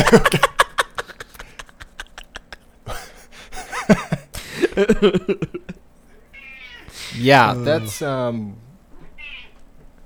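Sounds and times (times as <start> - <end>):
laughter: 0.0 - 5.8
low hum: 0.0 - 10.0
speech: 0.1 - 0.4, 4.8 - 5.7, 7.2 - 8.6
short high-pitched cat screech: 6.3 - 8.1, 9.1 - 9.6.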